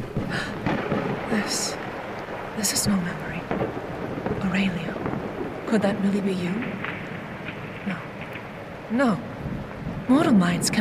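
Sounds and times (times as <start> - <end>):
low rolling thunder: 0.0 - 10.8
rain-like hiss: 0.0 - 10.8
speech: 1.4 - 1.9, 2.6 - 6.8, 7.8 - 8.1, 8.9 - 9.3, 10.1 - 10.8.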